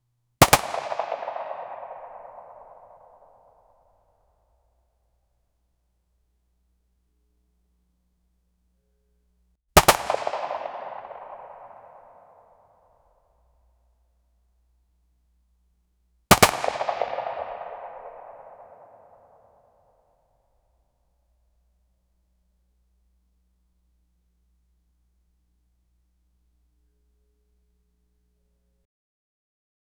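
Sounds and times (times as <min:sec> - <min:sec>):
assault rifle firing clear single shots: 0:00.4 - 0:02.9, 0:09.8 - 0:12.3, 0:16.3 - 0:19.3.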